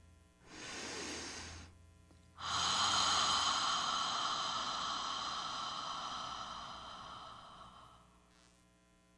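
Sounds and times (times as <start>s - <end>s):
long airy exhale through the mouth as a whispered ha: 0.5s - 1.7s, 2.4s - 8.2s
slow breath drawn in through the nose: 0.5s - 1.7s, 2.4s - 8.2s.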